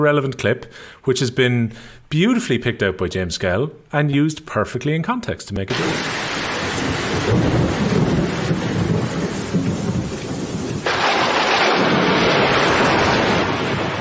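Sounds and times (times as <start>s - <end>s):
speech: 0.0s - 6.2s
heavy rain pouring: 5.7s - 13.9s
thunder rumbling: 5.7s - 13.9s.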